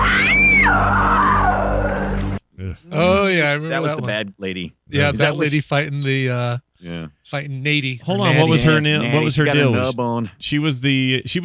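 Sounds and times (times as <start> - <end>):
woman screaming in a movie clip: 0.0 - 2.2
low hum: 2.6 - 11.3
speech: 2.7 - 11.4.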